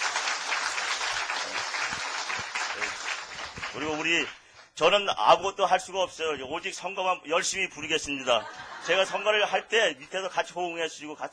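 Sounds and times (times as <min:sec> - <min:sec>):
crowd at a church fellowship group meeting applauding: 0:00.0 - 0:04.7
speech: 0:03.8 - 0:11.3
laughter: 0:08.2 - 0:10.2.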